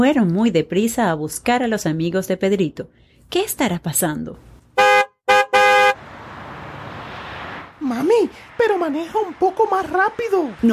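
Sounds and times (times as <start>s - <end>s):
speech: 0.0s - 4.5s, 8.0s - 10.7s
car horn honking: 4.8s - 6.1s.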